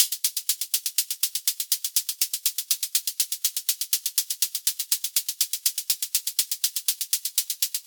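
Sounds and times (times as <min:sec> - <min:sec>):
122 BPM hi-hat pattern: 0:00.0 - 0:07.8.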